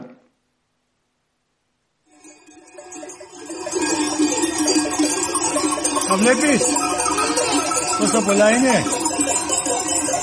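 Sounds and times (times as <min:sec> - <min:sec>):
bells on a herd of mostly goats jangling: 0:02.1 - 0:10.2
speech: 0:06.1 - 0:07.0, 0:08.0 - 0:09.0.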